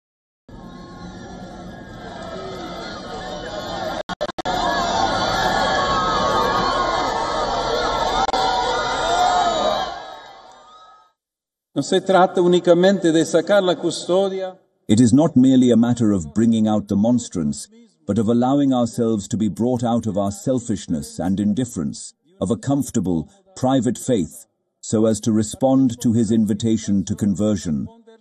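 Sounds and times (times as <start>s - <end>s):
large crowd roaring and cheering: 0.5s - 11.1s
speech: 11.8s - 28.0s.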